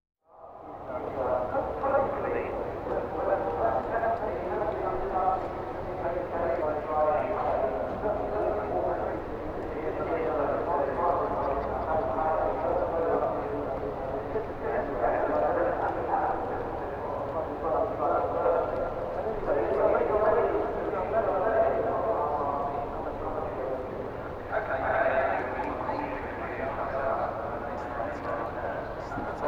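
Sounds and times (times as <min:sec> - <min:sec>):
outdoor event crowd ambience: 0:00.2 - 0:29.4.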